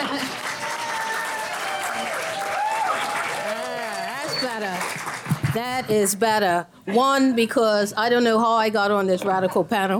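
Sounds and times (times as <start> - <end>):
people whooping and cheering: 0.0 - 4.5
crowd applauding: 0.0 - 5.6
speech: 5.6 - 9.9.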